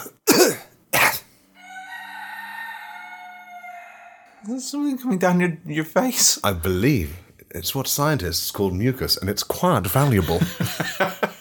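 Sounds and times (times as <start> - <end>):
throat clearing: 0.0 - 1.4
speech: 4.4 - 11.1
laughter: 10.0 - 11.3.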